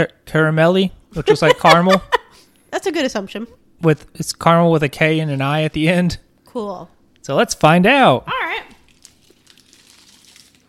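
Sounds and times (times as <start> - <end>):
speech: 0.0 - 2.1, 2.7 - 8.7
laughter: 1.2 - 2.4
plastic candy wrapper crinkling as it is opened: 8.8 - 10.6.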